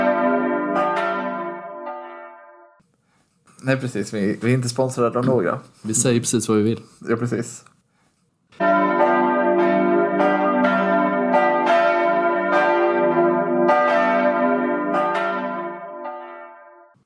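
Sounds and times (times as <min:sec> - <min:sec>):
church bells ringing in an overlapping peal: 0:00.0 - 0:02.8, 0:08.6 - 0:17.0
speech: 0:03.6 - 0:07.7.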